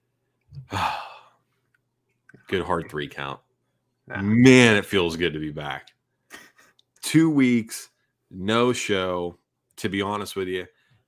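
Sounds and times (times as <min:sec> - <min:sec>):
single deep human breath: 0:00.6 - 0:01.4
speech: 0:00.7 - 0:01.0, 0:02.4 - 0:03.4, 0:04.1 - 0:05.9, 0:07.1 - 0:10.8.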